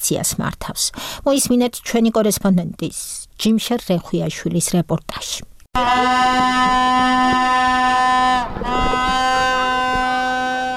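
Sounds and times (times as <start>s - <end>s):
speech: 0.1s - 7.9s
horns blown by protesters outside a government chancellery building: 5.8s - 10.7s.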